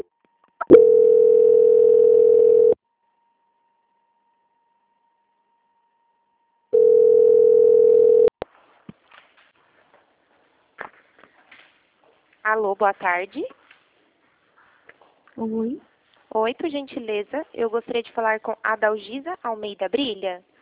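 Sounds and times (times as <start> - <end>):
telephone line beeps during a call transfer: 0.6 - 2.8, 6.8 - 8.3
speech: 12.6 - 13.6, 15.4 - 20.5.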